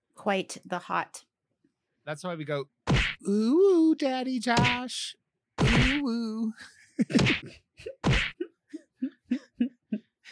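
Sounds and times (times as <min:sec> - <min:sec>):
speech: 0:00.2 - 0:01.3, 0:02.1 - 0:08.2
voice imitating punching sound effects while shadow boxing: 0:02.9 - 0:03.4, 0:04.5 - 0:05.0, 0:05.6 - 0:06.4, 0:07.1 - 0:08.4.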